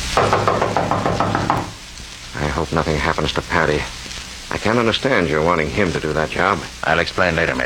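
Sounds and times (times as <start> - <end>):
firm knocking on a door: 0.2 - 1.8
speech: 2.6 - 7.6.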